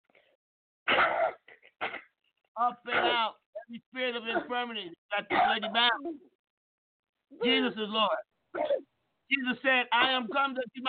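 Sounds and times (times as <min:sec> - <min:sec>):
woman coughing during a prayer for healing: 0:00.9 - 0:02.2, 0:02.9 - 0:03.7, 0:04.3 - 0:04.6, 0:05.3 - 0:06.1, 0:08.6 - 0:08.9
speech: 0:02.6 - 0:06.3, 0:07.3 - 0:10.8.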